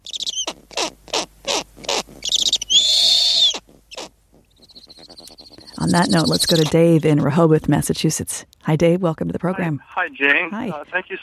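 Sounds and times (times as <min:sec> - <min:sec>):
snowy owl chick calling with raspy chirps: 0:00.0 - 0:07.1
speech: 0:05.8 - 0:11.2.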